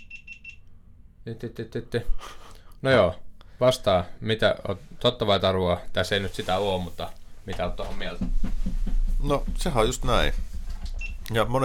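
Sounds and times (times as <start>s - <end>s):
camera beeping in high-pitched chirps: 0.0s - 0.6s
speech: 1.2s - 8.6s, 9.2s - 10.5s, 11.3s - 11.6s.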